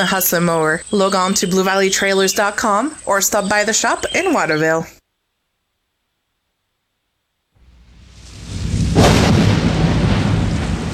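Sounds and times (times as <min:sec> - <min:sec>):
speech: 0:00.0 - 0:05.0
rolling thunderclap: 0:07.6 - 0:10.9.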